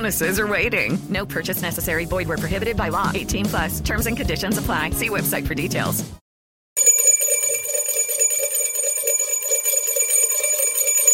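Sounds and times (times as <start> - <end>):
speech: 0.0 - 6.2
bright metallic bell ringing with rapid clapper rattle: 6.8 - 11.1.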